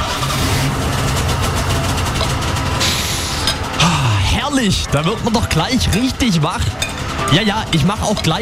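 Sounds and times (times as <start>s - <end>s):
Volkswagen Golf engine cranking and idling in a garage: 0.0s - 8.4s
speech: 4.6s - 8.4s.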